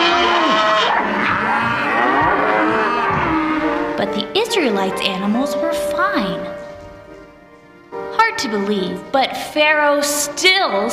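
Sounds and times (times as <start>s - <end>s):
several cows mooing: 0.0s - 4.0s
speech: 4.5s - 6.6s, 8.4s - 10.9s.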